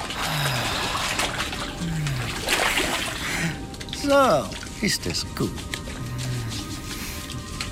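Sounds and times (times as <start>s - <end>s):
warm bath water sloshing and trickling: 0.0s - 7.7s
speech: 4.0s - 5.7s.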